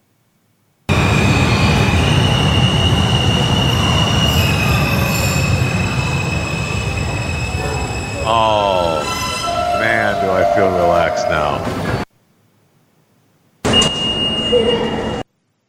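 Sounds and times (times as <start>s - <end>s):
subway train wheels high-pitched squeal: 0.9s - 12.0s
Brooklyn-bound 5 express subway train rumbling on the track: 0.9s - 12.1s, 13.7s - 15.3s.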